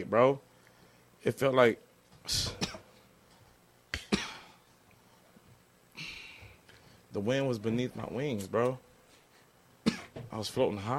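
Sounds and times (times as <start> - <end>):
speech: 0.0 - 0.5, 1.2 - 2.5, 7.2 - 8.9, 10.3 - 10.9
thick chesty coughs: 2.4 - 3.0, 3.9 - 4.6, 9.8 - 10.2.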